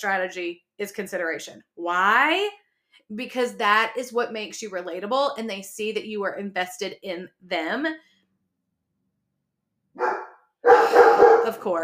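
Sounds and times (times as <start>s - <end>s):
speech: 0.0s - 8.1s, 10.0s - 10.2s, 11.4s - 11.8s
dog barking: 10.0s - 11.6s.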